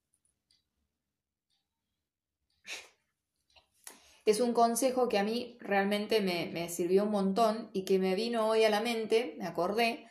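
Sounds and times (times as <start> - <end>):
mouth clicks: 2.5 - 4.0
person sneezing: 2.7 - 3.0
quiet breathing: 3.9 - 4.3
speech: 4.3 - 10.0.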